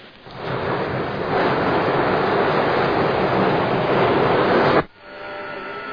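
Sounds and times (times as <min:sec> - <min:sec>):
loud steady water rushing down to turbines: 0:00.3 - 0:04.9.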